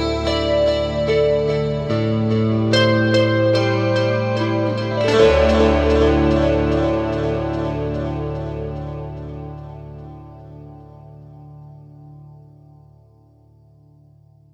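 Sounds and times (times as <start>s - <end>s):
dreamy choir: 0.2s - 11.0s.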